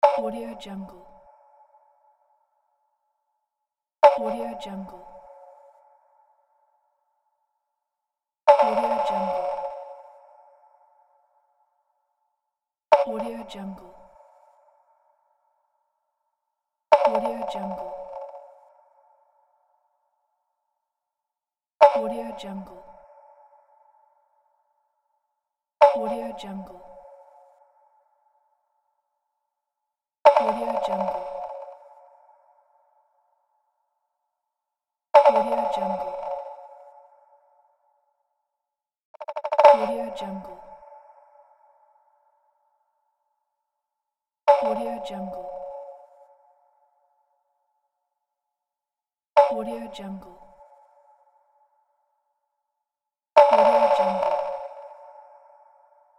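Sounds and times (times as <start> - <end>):
percussion drop effect: 0.0 - 2.0, 4.0 - 5.9, 8.5 - 11.1, 12.9 - 14.2, 16.9 - 19.3, 21.8 - 23.6, 25.8 - 27.7, 30.3 - 32.7, 35.2 - 37.8, 39.2 - 42.4, 44.5 - 46.6, 49.4 - 51.4, 53.4 - 56.1.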